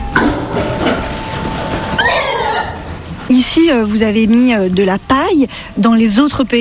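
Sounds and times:
steady hum: 0.0s - 6.6s
free-range pigs squealing in a shed on a farm in Sweden: 2.0s - 3.0s
speech: 3.3s - 6.6s.

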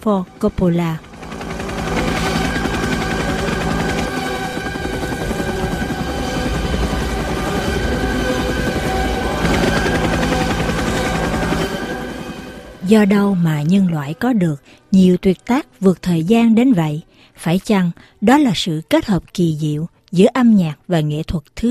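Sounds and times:
speech: 0.0s - 1.1s, 12.9s - 21.6s
helicopter squadron rotors chopping: 0.0s - 14.2s.

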